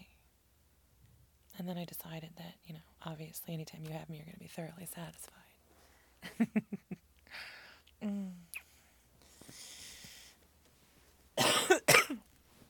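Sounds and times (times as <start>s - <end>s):
speech: 1.6s - 5.4s, 6.2s - 8.4s
breathing: 5.7s - 6.2s, 7.3s - 7.9s, 8.7s - 10.4s
person coughing: 11.4s - 12.2s.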